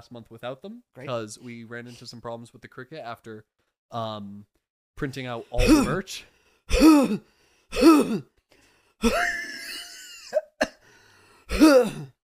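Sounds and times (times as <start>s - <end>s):
speech: 0.0s - 8.3s, 9.0s - 9.4s, 11.6s - 12.2s
raspy throat clearing: 5.6s - 6.0s, 6.7s - 8.3s, 11.5s - 12.2s
man coughing: 5.6s - 6.1s, 6.7s - 8.3s, 9.0s - 9.4s, 10.2s - 10.8s, 11.5s - 12.2s
man laughing: 9.0s - 10.7s.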